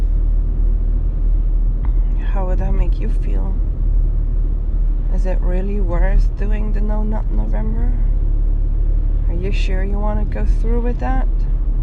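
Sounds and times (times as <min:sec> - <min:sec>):
car engine rumbling low: 0:00.0 - 0:11.8
brief person's voice: 0:02.1 - 0:03.6, 0:05.1 - 0:08.1, 0:09.3 - 0:11.4
speech: 0:02.6 - 0:03.7, 0:05.1 - 0:08.2, 0:09.3 - 0:11.5.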